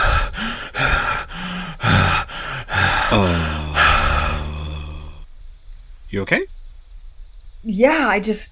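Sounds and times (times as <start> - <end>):
heavy rapid panting breaths after waking: 0.0 - 5.2
longer voiced shaky sighing exhale: 0.0 - 5.2
speech: 3.1 - 3.6, 6.1 - 6.5, 7.6 - 8.5.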